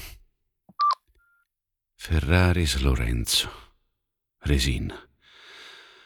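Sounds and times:
electronic phone keypad dialing tones: 0.7s - 1.0s
speech: 2.0s - 3.6s, 4.4s - 5.1s.

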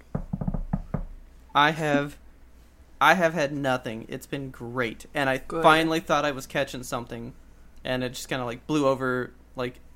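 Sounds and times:
knuckles knocking on wood: 0.1s - 1.1s
speech: 1.6s - 2.2s, 3.0s - 9.8s.

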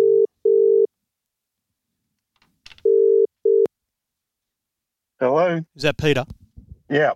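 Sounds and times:
outgoing phone call ringback tone: 0.0s - 0.9s, 2.8s - 3.7s
speech: 5.6s - 7.1s.

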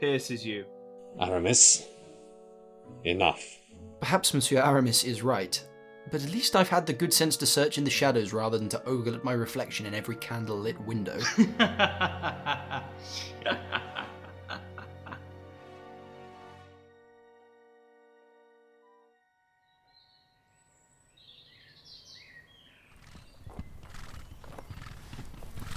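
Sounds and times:
speech: 0.0s - 2.0s, 2.9s - 13.9s
laughter: 11.2s - 15.5s
horses' hooves clip-clopping at a walk under riders: 23.0s - 25.7s.

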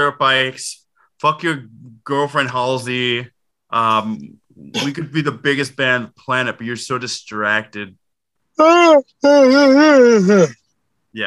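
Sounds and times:
speech: 0.0s - 8.0s, 8.6s - 11.2s
loud yawn into a phone microphone: 8.6s - 10.6s.

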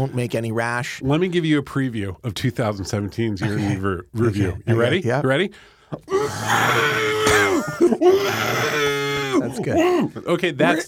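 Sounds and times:
speech: 0.0s - 10.8s
person screaming: 6.1s - 10.1s.

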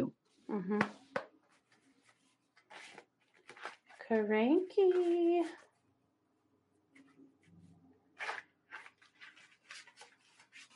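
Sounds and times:
deck of cards being shuffled: 0.8s - 5.8s, 8.2s - 10.7s
speech: 4.1s - 5.6s.

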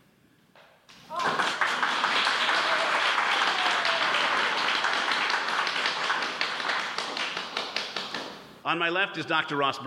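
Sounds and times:
studio audience applause: 1.1s - 8.4s
speech: 8.7s - 9.8s.

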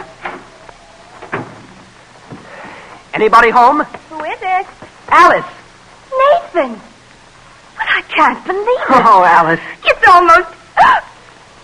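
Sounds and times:
front door opening at night while snow falls: 0.0s - 3.0s
faint hissing background: 0.0s - 11.6s
speech: 3.2s - 5.6s, 6.6s - 6.9s, 8.2s - 11.0s.

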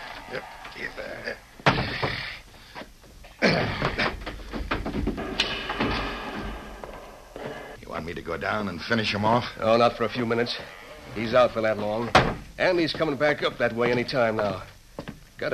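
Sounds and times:
speech: 0.3s - 2.0s, 8.2s - 14.7s
heavy trap door thuds and knocks: 3.6s - 7.8s.

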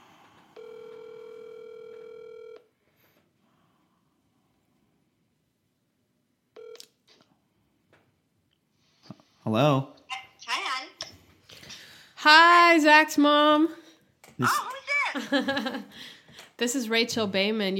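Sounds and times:
loud steady telephone dial tone: 0.5s - 2.7s, 6.6s - 7.0s
speech: 9.5s - 9.9s, 12.2s - 13.8s, 14.4s - 17.7s.

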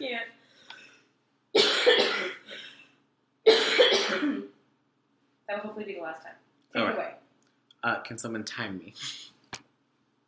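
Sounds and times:
harsh coughing fit: 1.6s - 2.6s, 3.5s - 4.5s
speech: 7.8s - 9.3s.

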